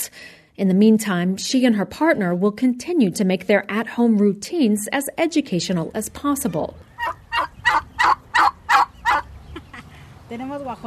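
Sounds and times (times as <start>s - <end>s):
speech: 0.6s - 7.8s, 10.3s - 10.8s
turkeys raised by a family at home gobbling: 6.3s - 9.8s.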